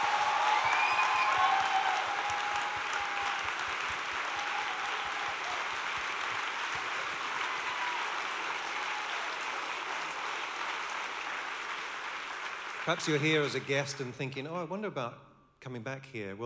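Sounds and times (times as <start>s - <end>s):
faint whoops: 0.0s - 5.8s, 7.4s - 9.5s
room full of people applauding: 0.0s - 14.0s
speech: 12.9s - 16.4s.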